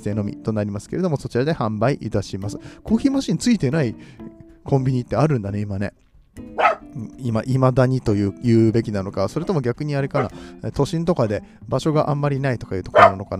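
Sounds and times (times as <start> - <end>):
speech: 0.0 - 13.3
dog barking in short sharp yaps: 6.6 - 6.8, 10.2 - 10.4, 12.9 - 13.3.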